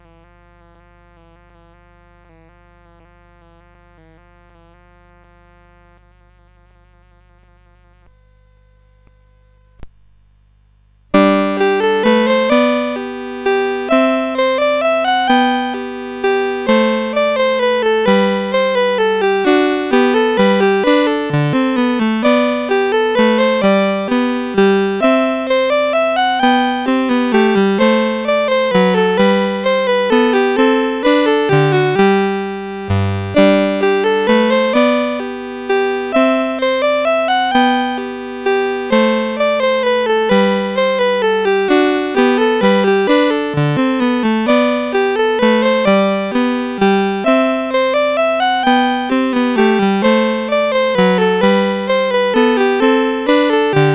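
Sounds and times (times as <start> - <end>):
minuet: 11.2 - 53.9.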